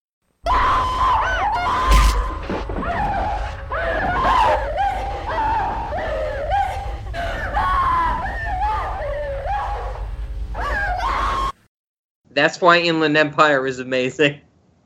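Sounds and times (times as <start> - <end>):
woman screaming in anguished wails in a film clip: 0.5 - 10.0, 10.6 - 11.6
low rumbling background: 0.5 - 11.0
speech: 12.4 - 14.5.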